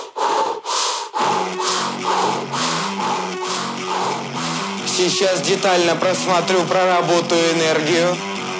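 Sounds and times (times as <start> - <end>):
heavy breathing through the mouth: 0.0 - 5.0
speech: 5.0 - 8.3.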